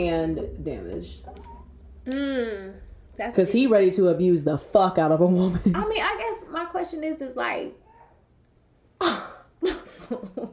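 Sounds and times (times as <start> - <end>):
speech: 0.0 - 7.8, 9.0 - 10.5
person sneezing: 9.0 - 9.6.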